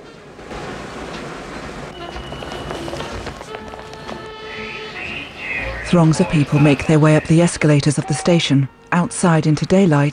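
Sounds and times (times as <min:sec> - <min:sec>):
underground train in motion roaring: 0:00.0 - 0:10.1
metallic whines: 0:01.9 - 0:09.9
faint murmur of voices: 0:02.0 - 0:10.1
speech: 0:05.9 - 0:10.1.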